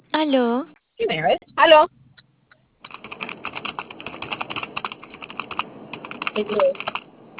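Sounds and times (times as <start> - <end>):
speech: 0.2 - 2.0, 6.4 - 6.9
typing on a computer keyboard: 2.8 - 7.3.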